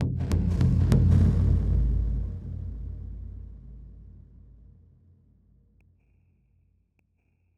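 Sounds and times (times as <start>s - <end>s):
drum hit: 0.0s - 3.9s.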